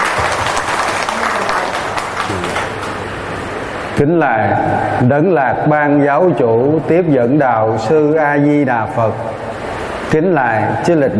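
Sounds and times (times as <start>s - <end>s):
large audience applauding: 0.0s - 3.2s
speech: 4.0s - 9.4s, 10.1s - 11.1s.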